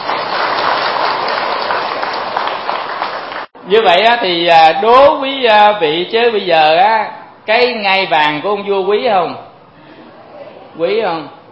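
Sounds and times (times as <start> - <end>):
audience applause at a Buddhist sermon: 0.0 - 3.5
speech: 3.7 - 9.5, 10.8 - 11.4.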